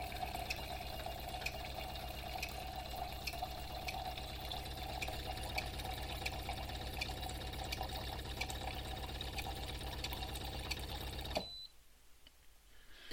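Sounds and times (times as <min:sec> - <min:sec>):
hot water pouring from an appliance: 0:00.0 - 0:11.4
brief high beep: 0:11.4 - 0:11.7.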